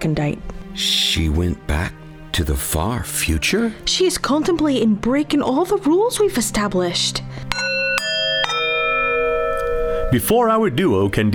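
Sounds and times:
speech: 0:00.0 - 0:07.7, 0:10.1 - 0:11.3
bright recall chime strikes with shimmering sustain: 0:07.5 - 0:10.4.

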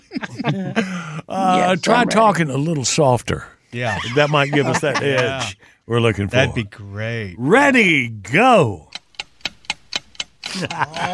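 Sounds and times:
laughter: 0:00.0 - 0:02.4, 0:03.8 - 0:05.6, 0:10.5 - 0:11.1
speech: 0:00.2 - 0:08.9, 0:10.5 - 0:11.1
game timer ticking: 0:08.8 - 0:11.1.

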